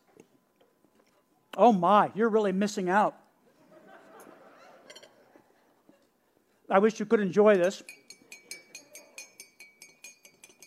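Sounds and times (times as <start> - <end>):
speech: 1.6 - 3.2, 6.7 - 8.0
laughter: 4.1 - 5.0
spoon clinking against a cup while stirring coffee: 7.6 - 10.6.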